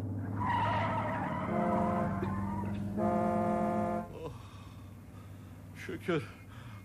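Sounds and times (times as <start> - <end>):
car tires squealing as it swerves under hard braking to avoid a bus: 0.2 - 3.0
speech: 5.8 - 6.4.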